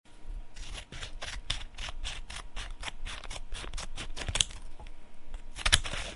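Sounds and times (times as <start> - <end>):
scissors cutting paper: 0.6 - 4.6, 5.6 - 6.1.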